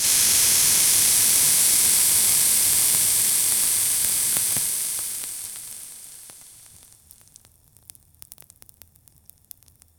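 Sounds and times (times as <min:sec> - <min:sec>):
lava sizzling violently and intensely: 0:00.0 - 0:07.4.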